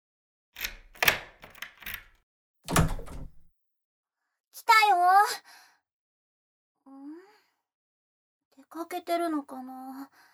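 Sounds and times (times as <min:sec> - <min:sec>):
spare key rattling and turning in a lock: 0:00.6 - 0:03.4
door swinging open with a thud: 0:00.6 - 0:03.5
speech: 0:04.6 - 0:05.6, 0:08.7 - 0:10.3.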